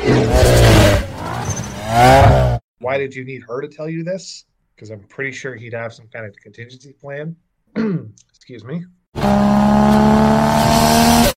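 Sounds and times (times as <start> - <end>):
loud car engine roaring: 0.0 - 2.6, 9.2 - 11.3
sustained tire squeal: 0.0 - 2.6
speech: 2.9 - 11.2.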